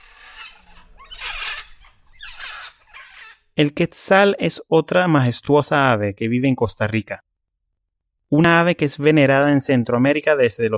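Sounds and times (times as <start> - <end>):
faint squawks: 0.0 - 3.5
scarlet macaws screeching calls: 0.0 - 3.6
speech: 3.6 - 7.3, 8.3 - 10.7.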